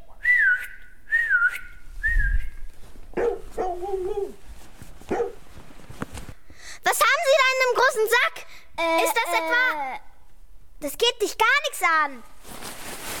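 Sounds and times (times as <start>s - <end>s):
loud whistles calling a dog: 0.2s - 2.6s
dog barking and yipping: 3.1s - 4.4s, 5.1s - 5.4s
speech: 7.9s - 10.0s, 10.8s - 12.6s.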